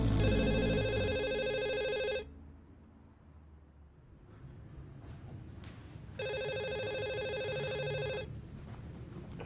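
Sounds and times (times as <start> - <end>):
telephone ringing with bright buzzing electronic tone: 0.2 - 2.3, 6.2 - 8.3.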